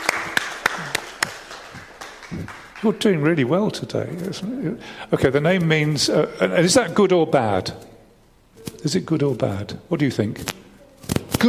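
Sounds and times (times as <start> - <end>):
children clapping in unison: 0.0 - 3.0
speech: 2.3 - 7.9, 8.8 - 10.7.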